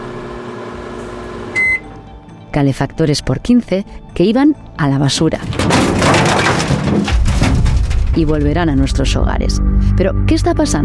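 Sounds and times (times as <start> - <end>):
microwave oven humming: 0.0 - 2.0
microwave oven beep: 1.3 - 2.0
speech: 2.6 - 7.2, 8.2 - 10.8.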